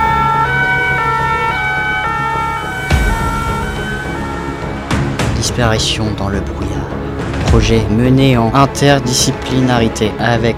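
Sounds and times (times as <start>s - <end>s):
fire engine and police sirens wailing: 0.0s - 5.9s
low traffic rumble: 0.0s - 7.8s
speech: 5.6s - 10.5s.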